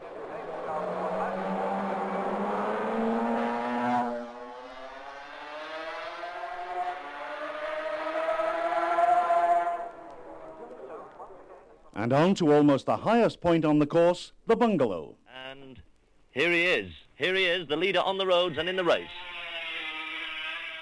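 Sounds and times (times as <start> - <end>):
racing motorcycle engine passing during a road race: 0.0 - 11.7, 18.9 - 20.8
speech: 12.0 - 15.2, 16.4 - 19.2.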